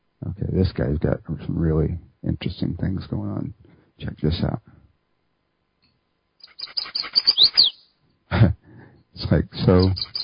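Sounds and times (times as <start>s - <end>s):
speech: 0.6s - 4.7s, 9.3s - 10.1s
chestnut-sided warbler song: 6.4s - 8.0s, 9.6s - 10.2s.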